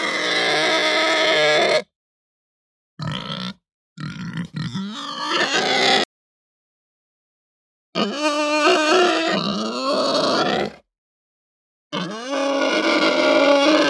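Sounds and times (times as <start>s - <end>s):
Hampshire breed pig giving harsh loud aggressive squeals: 0.0s - 1.9s, 3.0s - 6.1s, 8.0s - 10.8s, 11.9s - 13.8s.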